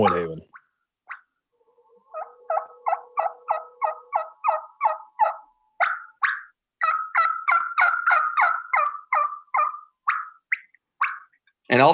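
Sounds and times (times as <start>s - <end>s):
hen turkey tree calls and bubbly clucks on a mouth call: 1.8s - 11.3s
speech: 11.8s - 11.9s.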